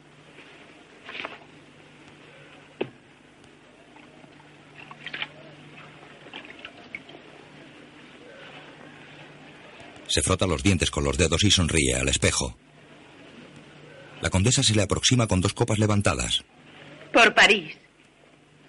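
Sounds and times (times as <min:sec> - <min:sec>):
hands dipping into a bowl of rose water: 0:04.7 - 0:07.2
speech: 0:10.1 - 0:12.6, 0:14.2 - 0:16.6, 0:17.2 - 0:17.8.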